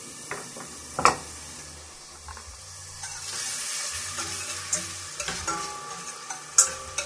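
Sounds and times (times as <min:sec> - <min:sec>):
bacon sizzling in melted margarine in a pan: 0:00.0 - 0:07.0
scraping stirs in a pan: 0:02.3 - 0:07.0.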